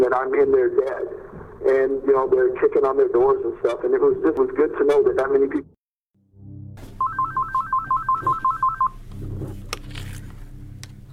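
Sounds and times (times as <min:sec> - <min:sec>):
speech: 0:00.0 - 0:05.8
telephone keypad tones on a call to a prison: 0:07.0 - 0:09.0.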